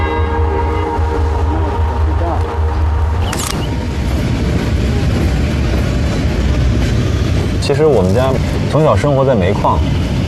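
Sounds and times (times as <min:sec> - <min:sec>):
train horn: 0:00.0 - 0:03.2
train pulling away along railway: 0:00.0 - 0:10.2
speech: 0:07.7 - 0:10.0.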